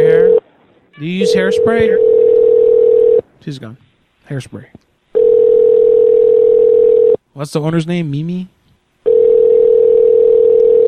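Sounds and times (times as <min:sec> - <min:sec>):
telephone call ringing out on the line: 0:00.0 - 0:00.4, 0:01.0 - 0:03.2, 0:05.2 - 0:07.2, 0:09.0 - 0:10.8
speech: 0:01.0 - 0:02.2, 0:03.4 - 0:04.9, 0:07.4 - 0:08.6.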